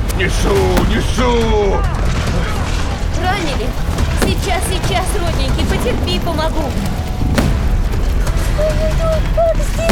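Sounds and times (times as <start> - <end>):
speech: 0.2 - 2.5, 3.2 - 7.5, 8.6 - 9.9
cannon fire in battle: 0.6 - 2.7, 4.0 - 5.8, 7.4 - 8.5.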